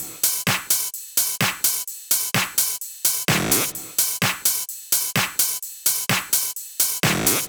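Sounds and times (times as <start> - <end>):
air raid drum kit: 0.0 - 7.4.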